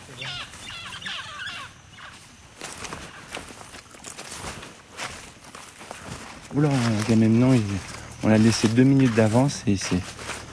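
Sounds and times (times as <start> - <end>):
pair of parrots squawking while flying overhead: 0.0 - 2.3
footsteps crunching through leaf litter in an agroforestry field with banana trees: 0.0 - 10.5
speech: 6.6 - 10.2.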